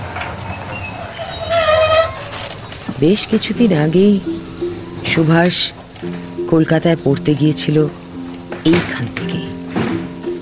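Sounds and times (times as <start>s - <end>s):
train wheels squealing: 0.0s - 2.6s
train pulling into a station rumbling: 0.0s - 10.4s
speech: 3.0s - 8.0s, 8.6s - 9.4s.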